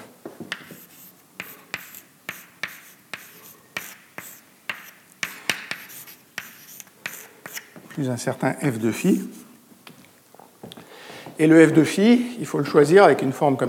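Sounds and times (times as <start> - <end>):
chalk writing equations on a board: 0.5 - 7.8
speech: 8.0 - 9.4, 11.4 - 13.6.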